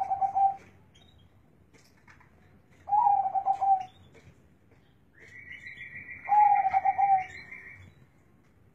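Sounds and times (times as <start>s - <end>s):
Zebra dove singing trilled coo phrases: 0.0s - 0.7s, 2.9s - 3.9s, 6.2s - 7.6s.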